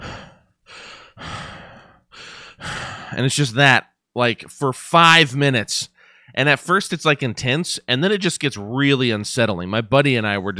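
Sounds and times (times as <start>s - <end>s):
person imitating heavy breathing: 0.0s - 3.2s
speech: 3.2s - 10.5s.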